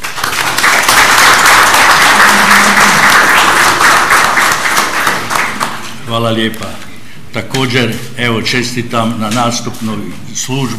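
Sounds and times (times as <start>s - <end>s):
councillors and attendees applauding at a county assembly session: 0.0s - 5.9s
speech: 6.1s - 6.8s, 7.4s - 10.7s.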